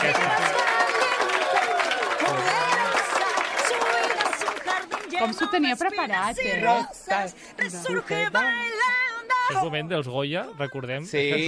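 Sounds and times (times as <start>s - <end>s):
crowd applauding: 0.0s - 5.9s
speech: 5.3s - 8.8s, 9.5s - 11.4s.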